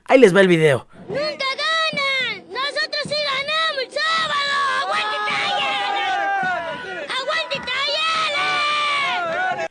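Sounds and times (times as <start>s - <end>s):
speech: 0.1s - 1.2s
child shouting a football chant: 1.2s - 6.2s, 7.0s - 9.3s.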